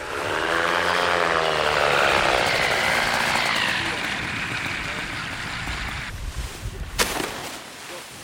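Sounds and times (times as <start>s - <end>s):
powered hang glider ultralight trike propeller engine flying in to land: 0.0s - 6.1s.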